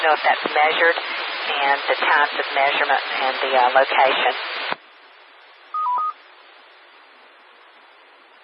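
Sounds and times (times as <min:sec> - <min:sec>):
speech: 0:00.0 - 0:04.5
radio static: 0:00.0 - 0:04.8
cell phone electronic beeps: 0:05.8 - 0:06.2.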